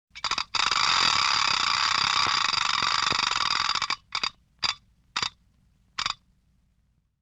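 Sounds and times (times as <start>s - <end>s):
vintage toy ratchet noisemaker: 0.2s - 5.4s.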